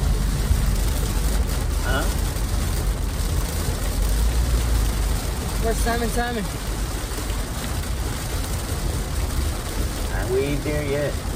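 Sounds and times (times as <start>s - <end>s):
heavy rain drumming on a surface: 0.0s - 11.3s
speech: 5.7s - 6.7s, 10.3s - 11.3s.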